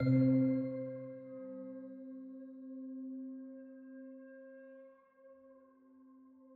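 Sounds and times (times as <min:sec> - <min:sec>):
melodic music: 0:00.0 - 0:01.4.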